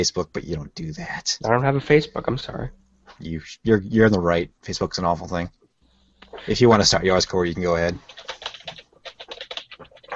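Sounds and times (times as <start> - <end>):
speech: 0.0 - 5.6, 6.2 - 8.3
typing on a computer keyboard: 8.0 - 10.1.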